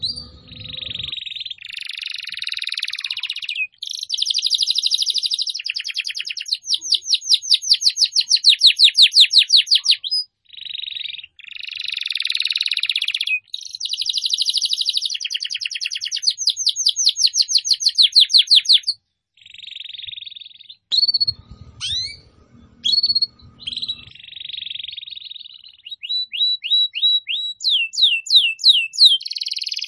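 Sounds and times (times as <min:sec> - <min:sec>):
low rumbling noise: 0:00.0 - 0:01.1, 0:21.1 - 0:24.1
canary song used as a bird lure: 0:00.0 - 0:29.8.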